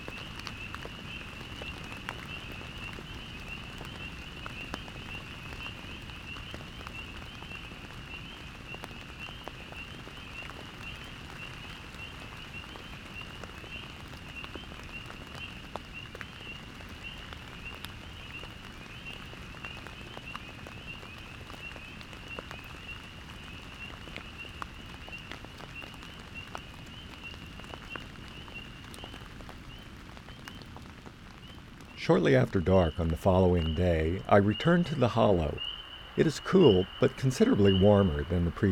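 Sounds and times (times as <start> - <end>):
steady rain pattering onto surfaces: 0.0 - 38.7
speech: 32.0 - 38.7
thin high insect-like or frog trill: 32.8 - 38.7.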